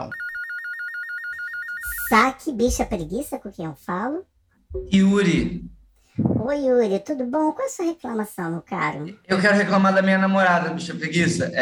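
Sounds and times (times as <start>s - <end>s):
telephone ringing with a warbling electronic trill: 0.0s - 2.3s
speech: 2.1s - 5.7s, 6.4s - 11.5s.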